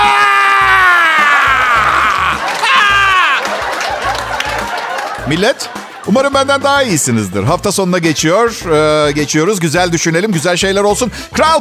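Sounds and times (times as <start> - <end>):
man imitating a pained scream with a strained wordless wail: 0.0 - 3.4
laughter: 0.8 - 7.1
speech: 5.3 - 11.5.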